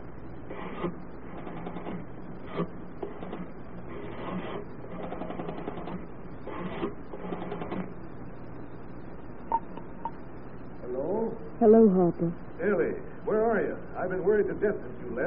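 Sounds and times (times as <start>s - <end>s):
telephone being dialed at a hotel pay-phone booth: 0.6s - 7.9s
speech: 11.6s - 15.2s.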